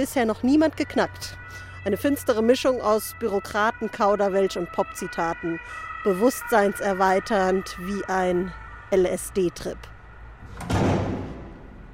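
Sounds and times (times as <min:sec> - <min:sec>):
speech: 0:00.0 - 0:09.9
door swinging shut with a heavy resonant thud: 0:10.4 - 0:11.8.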